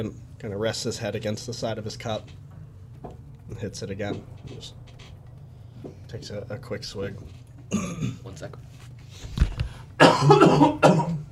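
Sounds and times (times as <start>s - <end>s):
speech: 0.0s - 2.4s, 3.5s - 5.1s, 5.8s - 9.4s, 10.2s - 11.1s
harsh coughing to clear a clogged throat: 7.7s - 8.2s, 10.0s - 11.3s.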